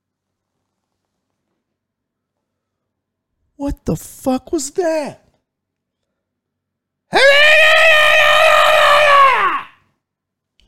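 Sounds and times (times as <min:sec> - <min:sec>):
speech: 0:03.6 - 0:05.2
human voice imitating an animal's shrill scream: 0:07.1 - 0:09.8.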